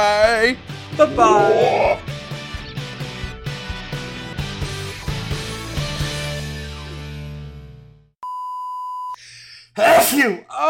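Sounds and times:
speech: 0.0s - 2.0s, 10.2s - 10.6s
sneeze: 9.8s - 10.3s.

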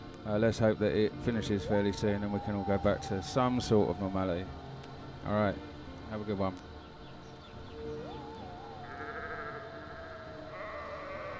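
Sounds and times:
steady outdoor hum: 0.0s - 11.3s
speech: 0.2s - 4.6s, 5.2s - 6.7s
sheep bleating: 7.9s - 11.3s.

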